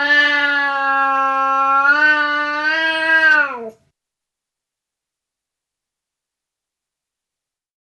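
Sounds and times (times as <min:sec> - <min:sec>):
Burmese cat wailing angrily: 0:00.0 - 0:03.8.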